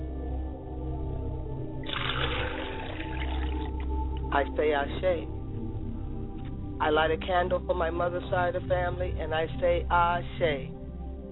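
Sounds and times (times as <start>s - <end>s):
low hum: 0.0s - 11.3s
water splashing while washing face and hands: 1.9s - 3.9s
speech: 4.3s - 5.4s, 6.8s - 10.8s.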